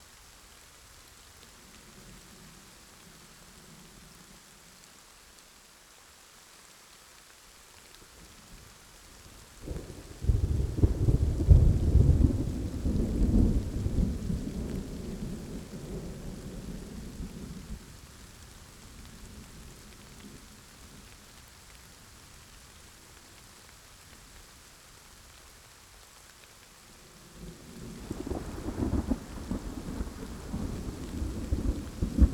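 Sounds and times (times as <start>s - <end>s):
rain: 0.0s - 32.3s
thunder: 9.7s - 16.7s, 28.0s - 32.3s.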